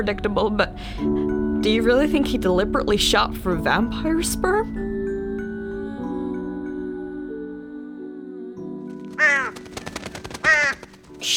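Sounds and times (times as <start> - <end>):
speech: 0.0 - 4.9
steady droning tonal background: 0.0 - 8.0
scattered ticks: 9.0 - 11.3
black bird cawing: 9.1 - 11.3.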